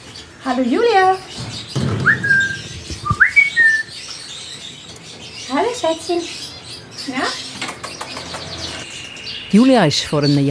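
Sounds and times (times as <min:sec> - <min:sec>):
speech: 0:00.4 - 0:01.4, 0:05.8 - 0:06.4, 0:07.1 - 0:07.4, 0:09.5 - 0:10.5
grey parrot whistling in an aviary: 0:02.0 - 0:03.9.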